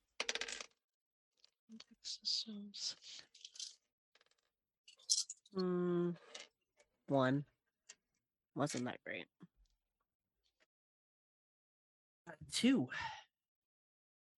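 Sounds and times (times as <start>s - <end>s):
dice rattling and clattering across a hard surface: 0.2s - 0.8s, 3.4s - 4.4s, 5.0s - 5.4s
speech: 1.7s - 3.6s, 5.5s - 6.4s, 7.1s - 7.5s, 8.6s - 9.5s, 12.3s - 13.2s.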